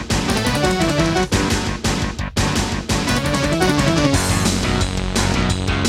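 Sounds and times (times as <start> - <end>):
soundcard intro music: 0.1 - 1.8, 3.0 - 5.8.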